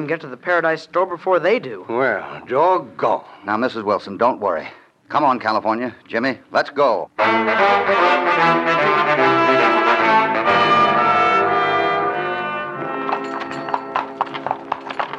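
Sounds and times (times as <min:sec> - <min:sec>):
speech: 0:00.0 - 0:09.8
sustained tonal music: 0:07.2 - 0:14.6
horses' hooves clopping at a walking pace through a stream: 0:12.7 - 0:15.1.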